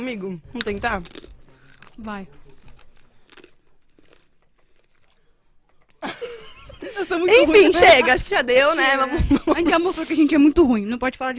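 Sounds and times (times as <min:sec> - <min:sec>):
speech: 0:00.0 - 0:01.2, 0:02.0 - 0:02.6, 0:06.8 - 0:11.3
crunchy chewing and biting of food: 0:00.5 - 0:06.0
laughter: 0:06.0 - 0:08.1, 0:08.7 - 0:10.2.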